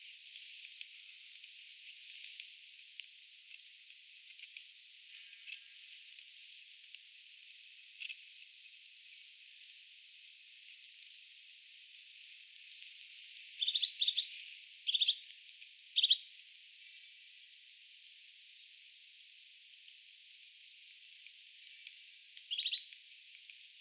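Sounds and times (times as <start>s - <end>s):
faint hiss: 0.0s - 2.6s, 5.1s - 6.7s
European crested tit calling, imitating a goldcrest: 13.2s - 16.2s.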